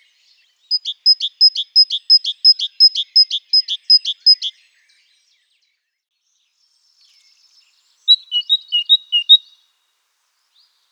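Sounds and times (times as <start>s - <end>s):
great tit Parus major singing sharp two-note phrases: 0.7s - 4.6s, 8.0s - 9.6s.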